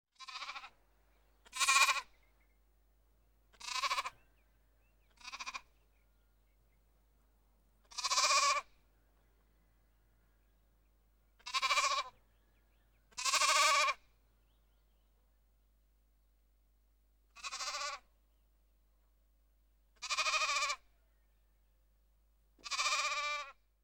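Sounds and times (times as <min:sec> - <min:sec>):
lamb: 0:00.2 - 0:00.7, 0:01.4 - 0:02.1, 0:03.6 - 0:04.2, 0:05.2 - 0:05.7, 0:07.8 - 0:08.7, 0:11.4 - 0:12.1, 0:13.1 - 0:14.0, 0:17.4 - 0:18.1, 0:20.0 - 0:20.8, 0:22.6 - 0:23.6.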